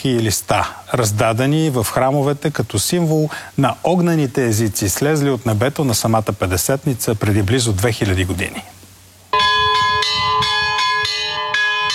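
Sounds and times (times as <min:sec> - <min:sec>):
speech: 0:00.0 - 0:08.8
church bells ringing: 0:09.4 - 0:11.9.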